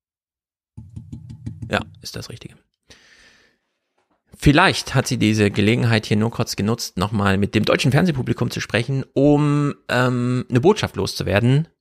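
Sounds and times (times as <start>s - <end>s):
quick knocks on a surface: 0.8s - 2.0s
speech: 1.7s - 2.7s, 4.4s - 11.7s.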